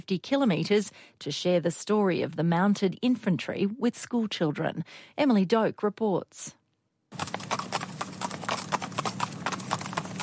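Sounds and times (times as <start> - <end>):
speech: 0.0 - 7.4
horse hooves trotting on a hard country road: 7.1 - 10.2.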